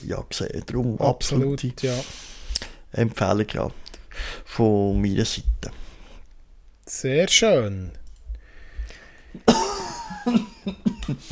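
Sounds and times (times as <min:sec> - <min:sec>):
speech: 0:00.1 - 0:02.3, 0:02.9 - 0:05.8, 0:06.9 - 0:08.0, 0:10.2 - 0:11.2
person coughing harshly: 0:09.4 - 0:11.2.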